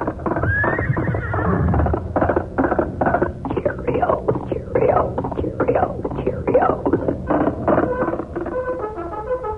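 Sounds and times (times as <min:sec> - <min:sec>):
galloping horse hoofbeats: 0:00.0 - 0:09.4
horse whinnying: 0:00.2 - 0:03.4.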